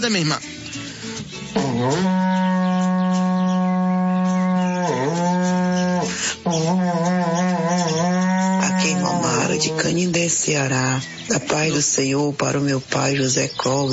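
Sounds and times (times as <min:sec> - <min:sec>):
speech: 0:00.0 - 0:00.5, 0:01.5 - 0:02.6, 0:09.6 - 0:13.9
berrante cattle horn being blown: 0:01.5 - 0:10.0.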